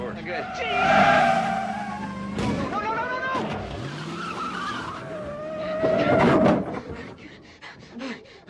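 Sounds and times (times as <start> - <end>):
tires squealing: 0.0 - 6.9
car engine whining while reversing fast: 0.0 - 7.2
speech: 0.3 - 1.0.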